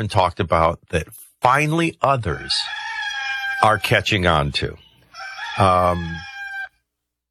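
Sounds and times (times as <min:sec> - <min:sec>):
speech: 0:00.0 - 0:02.9, 0:03.6 - 0:04.8, 0:05.6 - 0:06.3
rooster crowing: 0:02.2 - 0:06.8.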